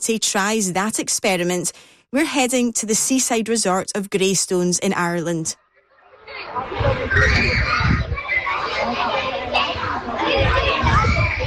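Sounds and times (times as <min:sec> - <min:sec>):
speech: 0:00.0 - 0:05.6, 0:06.3 - 0:08.0
children laughing and shouting in a primary school playground: 0:05.8 - 0:11.4
children's excited squeals: 0:06.8 - 0:08.8.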